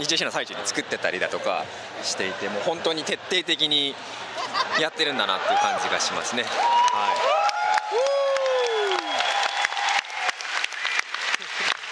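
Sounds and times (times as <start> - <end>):
speech: 0.0 - 8.0
laughter: 4.2 - 6.4, 11.2 - 11.9
audience applause at a convention event: 5.4 - 11.9.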